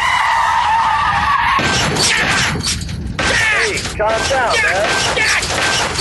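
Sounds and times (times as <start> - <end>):
car tires screeching and skidding: 0.0 - 5.3.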